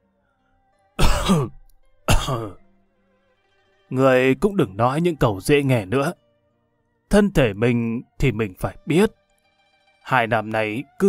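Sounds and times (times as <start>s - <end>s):
aging man coughing lightly: 1.0s - 2.6s
speech: 1.3s - 1.6s, 2.3s - 2.6s, 3.9s - 6.2s, 7.1s - 9.2s, 10.1s - 11.0s.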